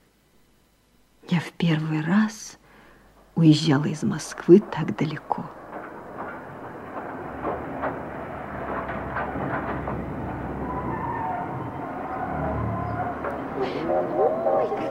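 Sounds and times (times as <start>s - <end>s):
speech: 1.3s - 2.6s, 3.4s - 5.6s
train pulling into a station with a heavy rumble: 3.0s - 14.8s
metallic clanks: 4.2s - 14.4s
brief squealing tones: 4.7s - 14.8s.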